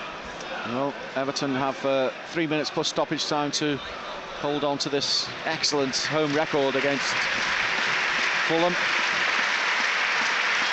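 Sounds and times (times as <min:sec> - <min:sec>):
speech: 0:00.7 - 0:07.6, 0:08.5 - 0:09.0
large stadium crowd applauding: 0:05.4 - 0:10.7.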